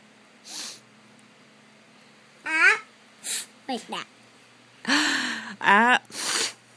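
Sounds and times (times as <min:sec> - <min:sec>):
air forced out through the nose: 0:00.4 - 0:00.8, 0:06.1 - 0:06.6
speech: 0:03.7 - 0:04.2, 0:04.8 - 0:06.2.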